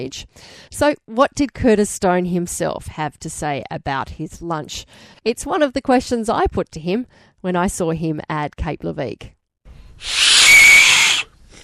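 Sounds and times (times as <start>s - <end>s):
speech: 0.0s - 9.4s, 10.0s - 10.2s
breathy whistle blown with a small shell at Cape Leveque: 10.0s - 11.3s.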